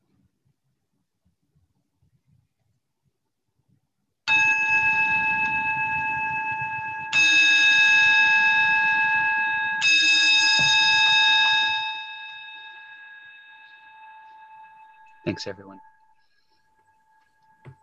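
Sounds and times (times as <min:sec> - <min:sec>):
meditation bell being struck: 0:04.3 - 0:17.8
speech: 0:15.4 - 0:15.9.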